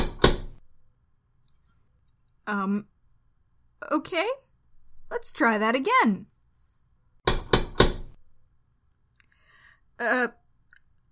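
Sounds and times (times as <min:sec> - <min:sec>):
firm knocking on a door: 0:00.0 - 0:00.6, 0:07.2 - 0:08.2
speech: 0:02.5 - 0:02.9, 0:03.9 - 0:04.4, 0:05.1 - 0:06.3, 0:10.0 - 0:10.4.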